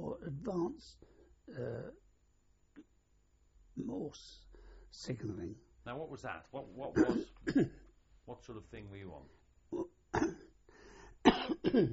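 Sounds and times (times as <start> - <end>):
speech: 0.4 - 2.0, 3.8 - 10.4, 11.5 - 11.9
man clearing his throat with a soft rasp: 7.0 - 7.9, 9.7 - 10.5, 11.2 - 11.9
man coughing in harsh bursts: 7.0 - 7.9, 9.8 - 10.6, 11.2 - 11.9.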